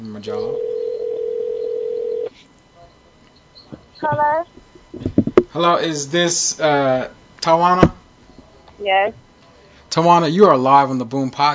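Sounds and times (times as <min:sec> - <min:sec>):
faint hiss: 0:00.0 - 0:11.5
speech: 0:00.1 - 0:00.7, 0:04.0 - 0:08.0, 0:08.8 - 0:09.2, 0:09.9 - 0:11.5
ringback tone of an outgoing telephone call: 0:00.3 - 0:02.3.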